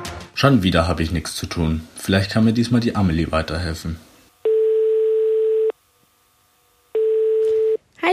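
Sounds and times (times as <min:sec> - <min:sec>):
speech: 0:00.4 - 0:04.1
telephone ringing tone before call connects: 0:04.4 - 0:05.7, 0:06.9 - 0:07.8.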